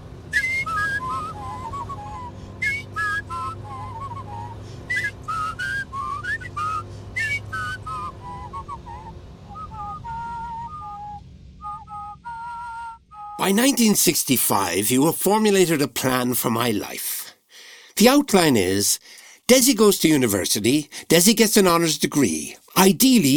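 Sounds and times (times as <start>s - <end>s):
steady low rumble: 0.0s - 13.4s
two people whistling a lively tune together: 0.3s - 13.4s
speech: 13.5s - 17.1s, 18.0s - 23.3s.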